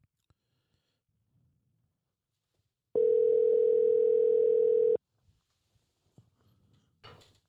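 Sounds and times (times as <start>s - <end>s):
telephone dial tone: 3.0s - 5.0s.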